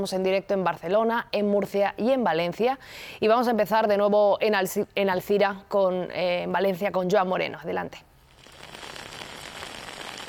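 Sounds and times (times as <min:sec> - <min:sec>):
speech: 0:00.0 - 0:08.1
steady rain falling with some intensity in Alzira, Ribera Alta, Valencia: 0:08.4 - 0:10.2.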